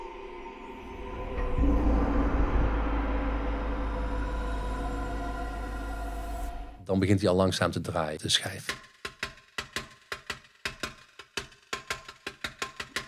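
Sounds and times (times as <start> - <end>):
deep gong stroke: 0.0 - 6.8
speech: 6.9 - 8.9.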